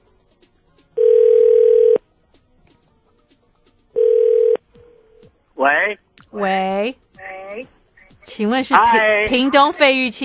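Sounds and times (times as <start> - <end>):
telephone calling tone while calling a mobile phone: 1.0 - 2.0, 4.0 - 4.6
speech: 5.6 - 7.7, 8.3 - 10.2.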